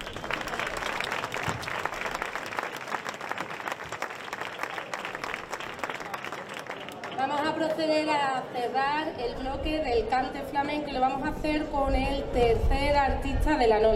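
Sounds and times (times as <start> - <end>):
large audience applauding at a flamenco festival in Castiblanco: 0.0 - 7.8
speech: 7.6 - 13.9.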